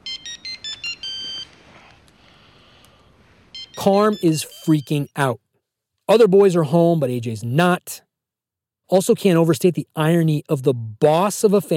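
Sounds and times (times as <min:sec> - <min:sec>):
phone ringtone of electronic beeps: 0:00.0 - 0:01.5, 0:03.4 - 0:05.3
speech: 0:03.8 - 0:05.4, 0:06.1 - 0:08.1, 0:08.9 - 0:11.7.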